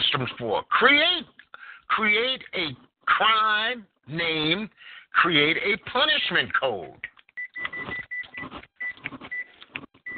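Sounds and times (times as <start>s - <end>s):
speech: 0.1s - 7.1s
microwave oven beeping: 7.4s - 10.1s.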